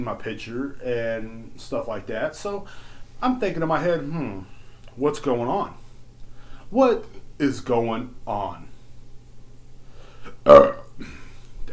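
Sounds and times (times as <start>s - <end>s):
speech: 0.0s - 5.8s, 6.7s - 8.7s, 10.4s - 11.7s
loud burp after drinking beer: 10.3s - 11.3s.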